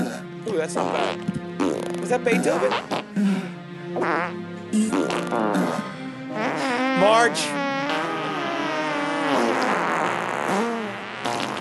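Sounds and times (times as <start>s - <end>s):
speech: 0.5s - 7.6s
fart sound effect: 0.8s - 2.0s, 4.0s - 11.6s.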